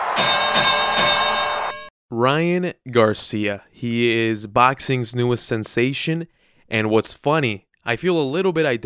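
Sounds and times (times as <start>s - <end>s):
bright metallic opening bell dinging: 0.2s - 1.9s
speech: 2.2s - 8.8s.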